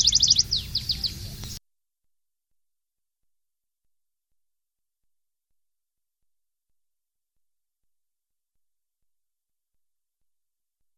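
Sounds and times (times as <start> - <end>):
canary singing: 0.0 - 1.6.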